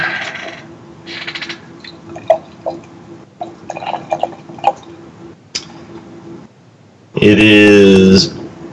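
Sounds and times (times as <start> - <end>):
faint steady hum: 0.0 - 8.7
thick dark beer being poured: 2.0 - 4.9
speech: 7.2 - 8.4.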